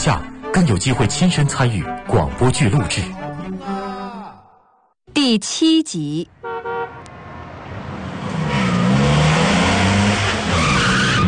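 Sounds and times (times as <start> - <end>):
speech: 0.0 - 3.2, 5.3 - 6.4
car tires screeching during sharp emergency braking: 6.8 - 11.2.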